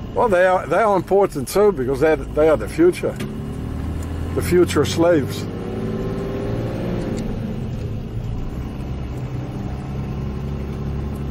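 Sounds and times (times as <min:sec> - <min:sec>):
car engine low-pitched rumble: 0:00.0 - 0:11.2
speech: 0:00.2 - 0:03.3, 0:04.4 - 0:05.5.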